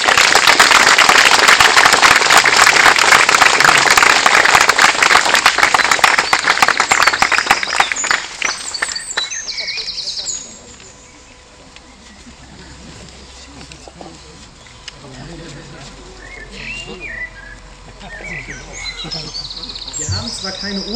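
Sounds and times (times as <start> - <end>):
church audience applauding to welcome a newly baptized child: 0.0 - 9.8
laughter: 15.1 - 20.0.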